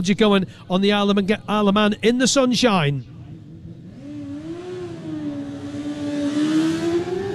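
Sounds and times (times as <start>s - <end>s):
speech: 0.0s - 3.2s
carburettor Yamaha YZF R6 racing motorcycle engine setting off at an Isle of Man road race: 3.2s - 7.3s.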